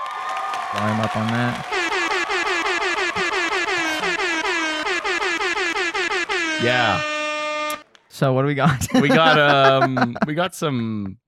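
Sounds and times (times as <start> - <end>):
speech: 0.7 - 1.8, 6.6 - 7.1, 8.2 - 11.2
laughter: 0.8 - 5.0, 8.6 - 11.2
air horns blaring in pulsing bursts: 0.8 - 7.9.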